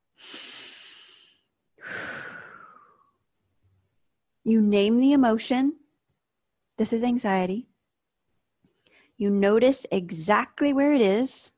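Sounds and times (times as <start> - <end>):
slow deep human breath in and out: 0.0 - 3.2
speech: 4.5 - 5.8, 6.8 - 7.7, 9.2 - 11.5.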